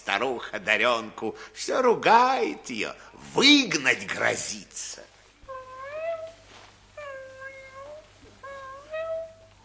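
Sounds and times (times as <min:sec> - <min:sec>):
speech: 0:00.1 - 0:05.1
kitten meowing: 0:07.0 - 0:09.4.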